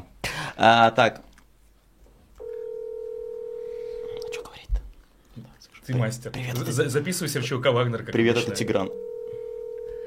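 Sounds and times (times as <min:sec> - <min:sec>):
speech: 0:00.6 - 0:01.3, 0:05.4 - 0:09.0
steady mid-pitched telephone line tone during dialing: 0:02.4 - 0:04.4, 0:08.7 - 0:10.0.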